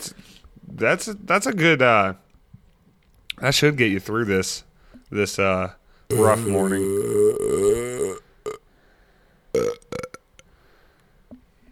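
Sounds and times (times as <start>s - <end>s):
speech: 0.8s - 2.2s, 3.4s - 8.2s
loud drawn-out belch: 6.1s - 8.6s, 9.6s - 10.3s.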